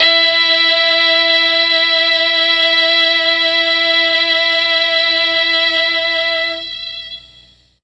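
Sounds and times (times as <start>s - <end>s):
mellotron strings and brass E3 note: 0.0s - 7.6s.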